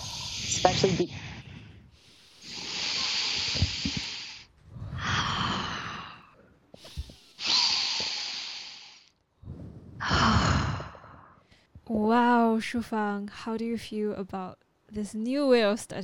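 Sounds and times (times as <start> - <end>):
slow deep breathing: 0.0 - 11.8
speech: 0.6 - 1.2, 12.5 - 16.0.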